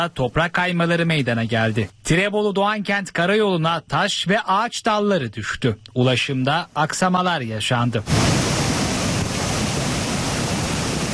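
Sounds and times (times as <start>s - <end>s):
speech: 0.0s - 8.4s
floodwater of an overflowing stream rushing: 8.1s - 11.1s.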